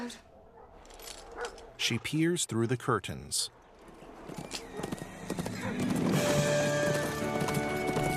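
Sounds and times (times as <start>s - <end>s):
speech: 0.1s - 0.3s, 1.8s - 3.6s, 4.3s - 4.7s
horse galloping across snow: 3.8s - 8.1s.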